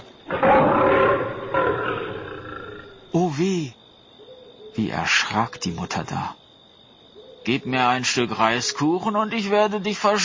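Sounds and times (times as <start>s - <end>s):
tiger roaring: 0.3s - 3.0s
speech: 5.0s - 6.4s, 7.4s - 10.2s.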